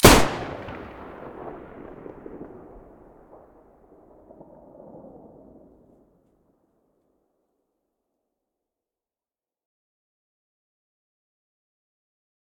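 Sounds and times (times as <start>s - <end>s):
Taurus raging muzzle blasts: 0.0s - 2.7s.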